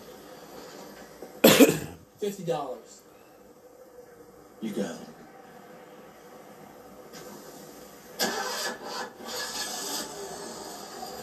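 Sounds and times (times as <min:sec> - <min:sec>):
speech: 0:02.2 - 0:03.0, 0:04.6 - 0:05.2
car engine cranking with a harsh grinding starter rasp: 0:08.2 - 0:11.2.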